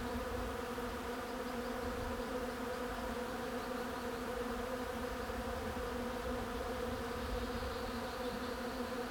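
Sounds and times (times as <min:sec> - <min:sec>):
bees buzzing: 0:00.0 - 0:09.0.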